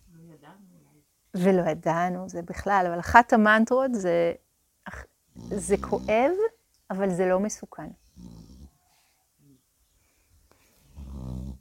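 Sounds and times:
speech: 0:00.5 - 0:08.0
pet snoring loudly in rumbling breaths: 0:05.3 - 0:06.5, 0:08.1 - 0:08.8, 0:10.8 - 0:11.5.

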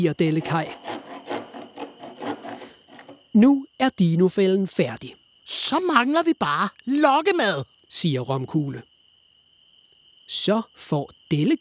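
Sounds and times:
speech: 0:00.0 - 0:00.9, 0:03.4 - 0:08.9, 0:10.3 - 0:11.6
hand saw cutting through a wooden stick: 0:00.0 - 0:03.3.

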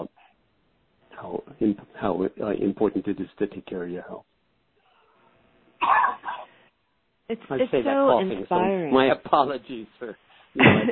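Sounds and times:
speech: 0:01.6 - 0:04.3, 0:07.3 - 0:10.8
sharp cough: 0:05.8 - 0:06.5
throat clearing: 0:05.8 - 0:06.5.

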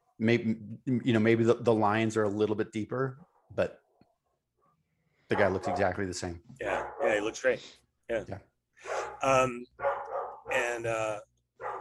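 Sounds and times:
speech: 0:00.2 - 0:03.8, 0:05.3 - 0:09.9, 0:10.5 - 0:11.3
female dog barking with drawn-out yelping barks: 0:05.3 - 0:06.0, 0:06.6 - 0:07.4, 0:08.8 - 0:10.7, 0:11.6 - 0:11.7.

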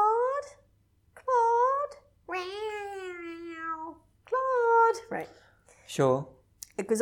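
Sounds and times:
woman imitating a cat's meow: 0:01.2 - 0:05.0
speech: 0:05.9 - 0:07.0.

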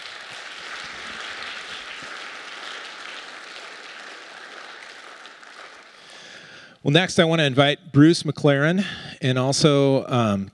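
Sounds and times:
sustained audience applause of many hands clapping: 0:00.0 - 0:06.7
speech: 0:06.8 - 0:10.5.

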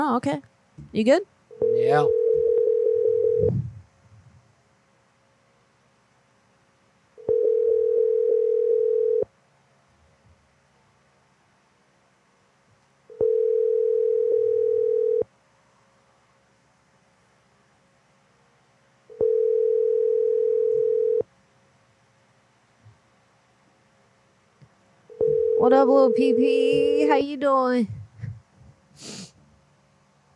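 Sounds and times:
speech: 0:00.0 - 0:02.2, 0:25.7 - 0:28.0
telephone ringback tone while calling: 0:01.6 - 0:03.5, 0:07.2 - 0:09.3, 0:13.2 - 0:15.2, 0:19.2 - 0:21.2, 0:25.1 - 0:27.2.

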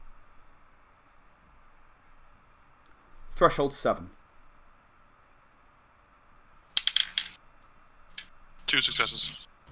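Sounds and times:
speech: 0:03.4 - 0:04.2, 0:08.7 - 0:09.5
dice rolled for a tabletop role-playing game check clattering on a hard surface: 0:06.8 - 0:07.4.

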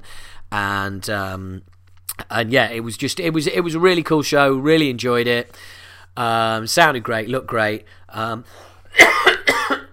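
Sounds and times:
speech: 0:00.5 - 0:09.2
harsh rasping coughs from a Christmas cough: 0:08.9 - 0:09.9.

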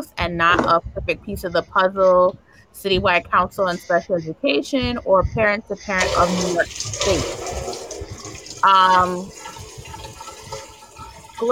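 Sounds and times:
low murmur of voices: 0:00.0 - 0:07.2
speech: 0:00.2 - 0:07.6, 0:08.6 - 0:09.4
water running from a tap: 0:06.0 - 0:11.5.

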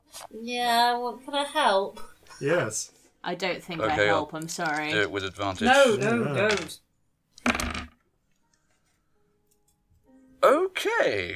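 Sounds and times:
speech: 0:00.3 - 0:06.8, 0:10.4 - 0:11.3
dice being rolled across a table: 0:06.4 - 0:06.8, 0:07.4 - 0:08.0.

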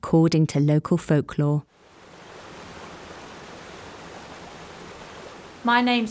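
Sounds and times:
speech: 0:00.0 - 0:01.8, 0:05.6 - 0:06.0
rushing water roaring from a waterfall: 0:01.7 - 0:06.0.

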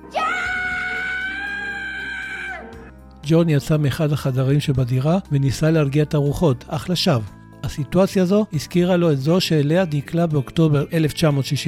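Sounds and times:
woman screaming: 0:00.0 - 0:02.9
speech: 0:03.3 - 0:11.6.

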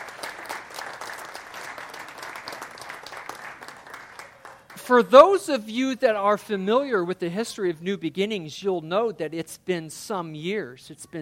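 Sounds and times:
large church audience applauding: 0:00.0 - 0:04.8
speech: 0:04.9 - 0:11.1.

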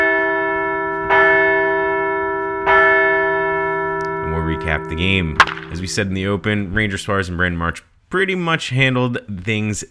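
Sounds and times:
large resonant bell struck: 0:00.0 - 0:06.7
speech: 0:04.7 - 0:09.8.

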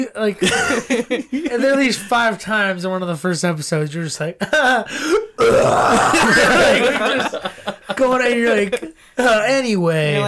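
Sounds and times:
speech: 0:00.0 - 0:10.2
people chuckling and laughing: 0:00.4 - 0:02.1, 0:04.4 - 0:09.0
loud belch into the microphone: 0:05.4 - 0:06.9.

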